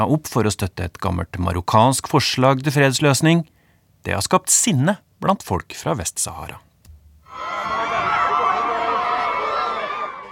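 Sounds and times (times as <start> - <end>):
speech: 0.0 - 6.7
large crowd cheering at a refugee camp in the Algerian desert: 7.3 - 10.2.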